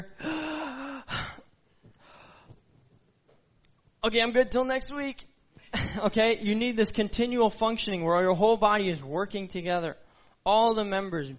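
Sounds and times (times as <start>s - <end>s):
person acting out an exaggerated gasp for air: 0.0s - 2.6s
speech: 4.0s - 5.3s, 6.0s - 11.3s.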